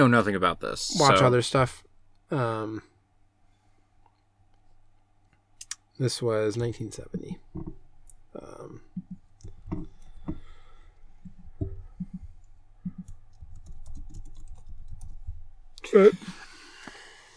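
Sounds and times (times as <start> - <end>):
speech: 0.0 - 2.9, 6.0 - 7.4, 15.9 - 16.4
typing on a computer keyboard: 12.8 - 15.3.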